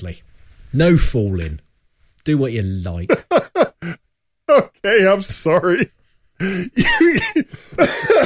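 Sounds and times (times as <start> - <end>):
speech: 0.0 - 1.6, 2.2 - 8.2
laughter: 3.1 - 4.6, 5.6 - 8.2
person coughing: 6.4 - 8.2.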